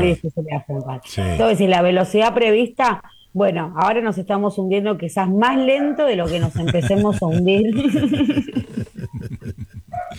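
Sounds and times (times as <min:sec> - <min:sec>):
speech: 0:00.0 - 0:10.1
dog barking in short yaps: 0:05.7 - 0:06.2, 0:09.9 - 0:10.1
laughter: 0:06.2 - 0:10.1.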